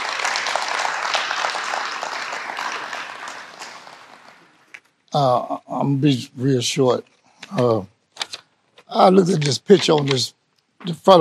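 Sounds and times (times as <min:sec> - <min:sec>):
crowd applauding: 0:00.0 - 0:04.8
speech: 0:05.2 - 0:07.9, 0:08.9 - 0:11.1.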